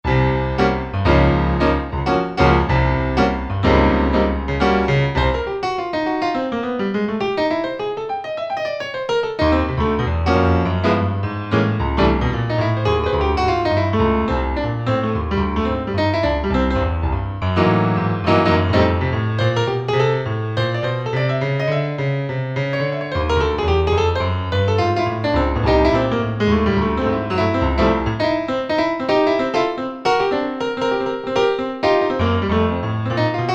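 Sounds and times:
stereo jazz piano: 0.0s - 33.5s.

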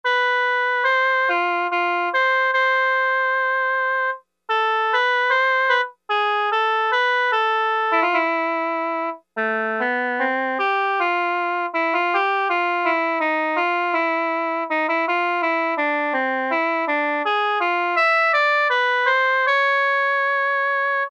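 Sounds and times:
Roland Juno-60 synthesizer oboe factory preset: 0.1s - 21.0s.

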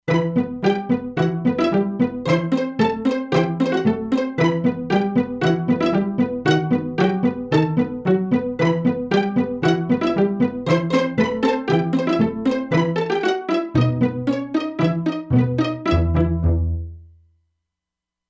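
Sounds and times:
pizzicato synth preset on E-mu Proteus-2: 0.1s - 17.2s.

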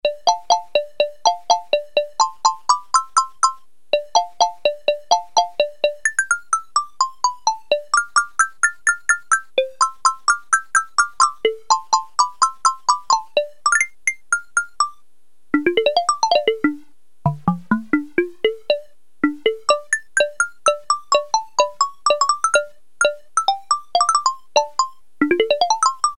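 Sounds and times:
crispy xylophone preset on Casio CZ-1000 synthesizer: 0.0s - 15.0s, 15.6s - 26.1s.

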